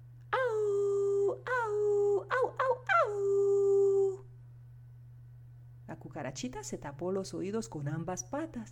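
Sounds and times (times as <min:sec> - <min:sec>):
steady low hum: 0:00.0 - 0:08.7
voice imitating a wolf howling and yelping: 0:00.3 - 0:04.3
speech: 0:06.1 - 0:08.7.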